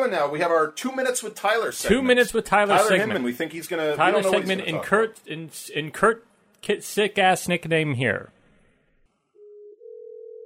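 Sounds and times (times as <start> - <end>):
speech: 0.1 - 8.4
electronic telephone ringing tone: 9.4 - 10.4.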